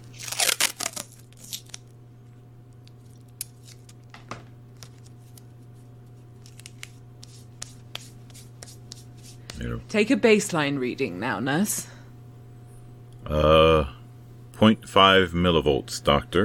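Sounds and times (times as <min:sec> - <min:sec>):
steady low hum: 0:00.0 - 0:16.4
adhesive tape tearing: 0:00.1 - 0:01.8
speech: 0:09.6 - 0:11.9, 0:14.6 - 0:16.4.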